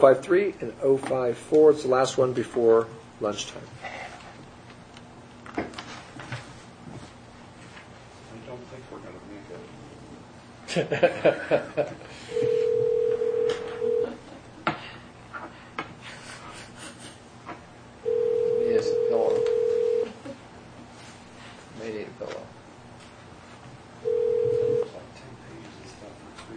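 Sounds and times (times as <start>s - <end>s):
speech: 0.0s - 4.0s, 10.8s - 12.4s
laughter: 10.7s - 12.1s
telephone ring tones of a call to voicemail: 12.3s - 14.2s, 18.0s - 20.2s, 24.0s - 24.9s
phone line clicks: 12.4s - 14.0s, 19.0s - 20.0s.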